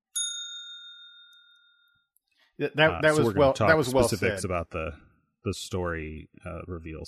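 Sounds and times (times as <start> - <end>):
single bell struck with a bright metallic ding: 0.1 - 2.1
speech: 2.6 - 7.0.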